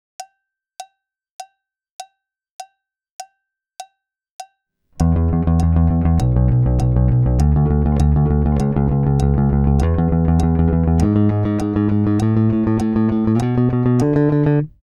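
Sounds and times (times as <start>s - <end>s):
guitar alternate picking practice phrase: 5.0s - 14.8s.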